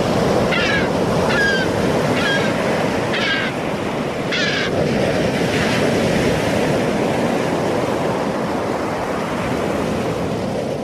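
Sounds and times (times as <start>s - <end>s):
ocean waves breaking on a beach: 0.0s - 10.8s
wind noise: 0.0s - 10.8s
bird calls: 0.5s - 3.6s, 4.3s - 4.7s.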